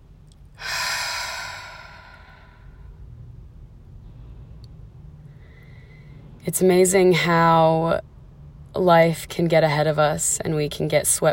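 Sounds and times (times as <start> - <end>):
low rumble: 0.0 - 11.3
deep grounding breath: 0.6 - 3.0, 5.3 - 6.3
speech: 6.5 - 8.1, 8.8 - 11.3.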